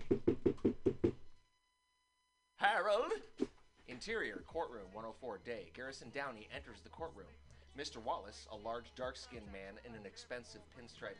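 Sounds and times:
firm knocks on the wooden chamber door of a judge's chambers in a courthouse: 0.0s - 1.2s
speech: 4.0s - 11.1s.

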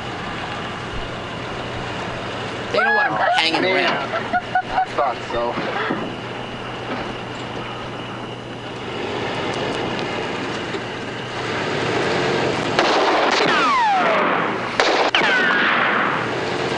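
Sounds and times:
steady rumbling background: 0.0s - 16.7s
laughter: 2.7s - 6.1s
speech: 2.7s - 6.1s
whining ricochet: 12.6s - 16.7s
movie-style gunshots: 12.7s - 16.4s.

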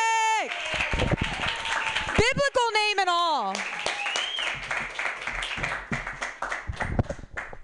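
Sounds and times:
audience applauding a person being introduced: 0.0s - 7.6s.

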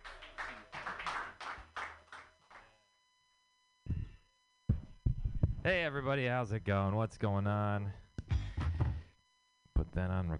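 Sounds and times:
audience clapping for a comedian: 0.0s - 2.7s
dull thumps: 3.9s - 5.7s
speech: 5.6s - 8.0s, 10.0s - 10.3s.

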